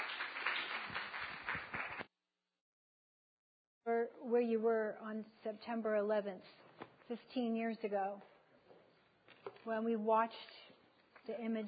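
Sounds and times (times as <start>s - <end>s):
church audience applauding: 0.0s - 2.1s
speech: 4.3s - 8.3s, 9.6s - 11.6s.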